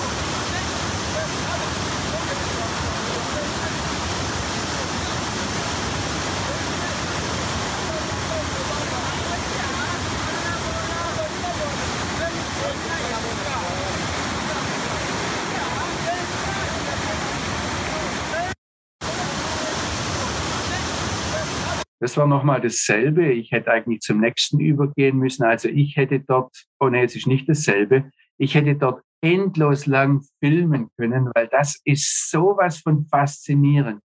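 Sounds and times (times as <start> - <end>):
Nile water rushing out of Lake Victoria in Uganda: 0.0 - 21.9
speech: 22.0 - 34.0.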